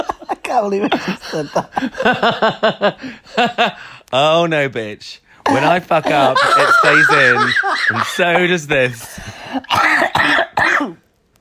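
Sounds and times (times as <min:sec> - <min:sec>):
laughter: 0:00.0 - 0:03.8, 0:05.5 - 0:09.5
speech: 0:00.5 - 0:11.0
loud harsh coughs: 0:09.5 - 0:11.0.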